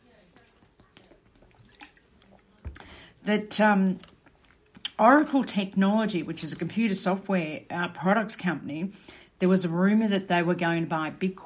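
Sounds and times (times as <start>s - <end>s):
person sipping water: 0.3s - 3.2s
speech: 3.2s - 4.1s, 5.0s - 11.4s.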